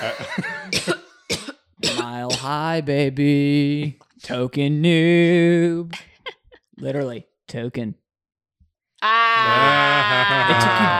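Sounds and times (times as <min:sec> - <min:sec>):
laughter: 0:00.0 - 0:00.7, 0:09.4 - 0:10.9
speech: 0:00.0 - 0:01.0, 0:02.4 - 0:06.1, 0:06.8 - 0:08.0, 0:09.0 - 0:10.9
person coughing after smoking weed: 0:00.0 - 0:02.6.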